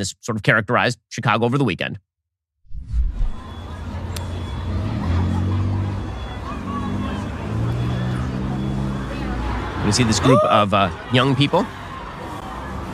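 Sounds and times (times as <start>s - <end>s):
speech: 0.0s - 2.1s, 9.8s - 11.8s
faint high whine: 2.7s - 3.8s
steady engine rumble and passing vehicles on a Chicago street: 2.8s - 12.9s
murmur of a crowd on a Chicago street: 3.2s - 12.9s.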